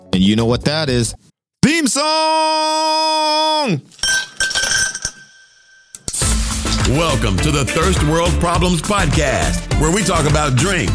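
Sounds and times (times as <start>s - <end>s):
speech: 0.2s - 4.8s, 6.9s - 10.9s
glass clattering: 3.9s - 6.0s
glass clinking while a drink is refilled: 3.9s - 6.1s.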